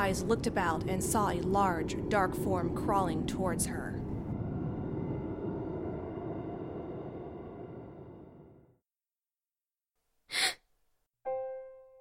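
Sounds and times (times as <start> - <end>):
speech: 0.0 - 4.0
low rumbling drone: 0.0 - 8.8
sharp gasp of breath on waking: 10.3 - 10.6.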